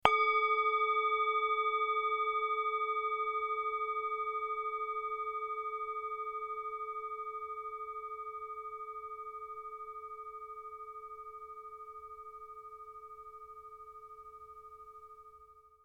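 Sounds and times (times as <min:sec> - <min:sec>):
13 cm medicine Buddha singing bowl struck with leather mallet: 0:00.0 - 0:15.4.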